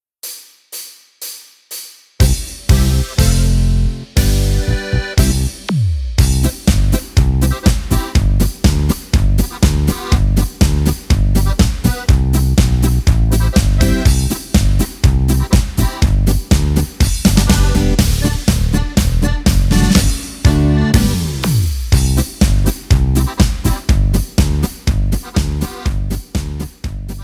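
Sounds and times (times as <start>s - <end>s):
regimental march music in G C F B: 2.2s - 27.2s.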